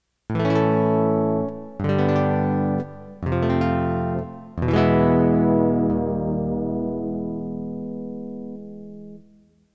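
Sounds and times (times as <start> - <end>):
jazz guitar: 0.3 - 9.6.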